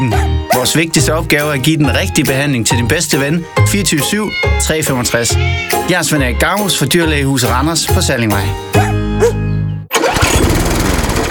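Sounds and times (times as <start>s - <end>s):
speech: 0.0s - 9.4s
lawn mower engine running: 9.9s - 11.2s.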